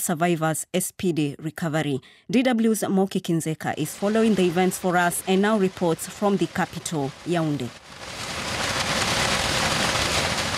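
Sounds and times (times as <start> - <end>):
speech: 0.0 - 8.2
heavy rain downpour pounding surfaces: 3.8 - 10.5.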